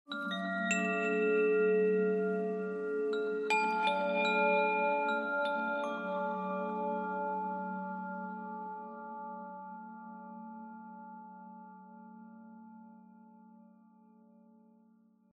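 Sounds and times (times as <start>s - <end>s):
ambient chimes: 0.1s - 10.2s.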